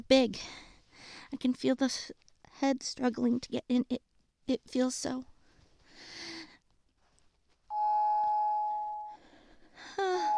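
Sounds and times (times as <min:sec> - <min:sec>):
speech: 0:00.1 - 0:00.7, 0:01.3 - 0:05.3
electronic doorbell chime: 0:07.7 - 0:09.2, 0:10.2 - 0:10.3.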